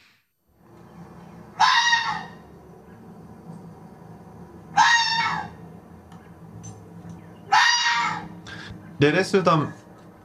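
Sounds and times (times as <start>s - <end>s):
quiet low hum: 0.4s - 10.2s
red fox giving harsh hoarse screams: 1.5s - 2.5s, 4.7s - 5.6s, 7.4s - 8.4s
speech: 9.0s - 9.8s.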